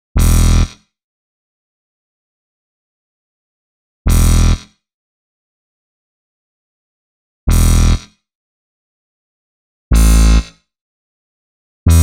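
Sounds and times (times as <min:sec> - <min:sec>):
bass in E minor: 0:00.1 - 0:00.7, 0:04.1 - 0:04.6, 0:07.5 - 0:08.0, 0:09.9 - 0:10.5.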